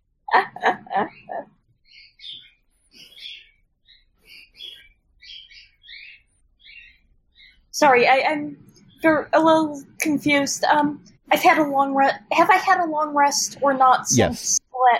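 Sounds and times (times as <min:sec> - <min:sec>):
short high twittering bird chirps: 0:01.1 - 0:07.7
loud harsh bird calls: 0:01.9 - 0:07.6
speech: 0:07.8 - 0:14.9.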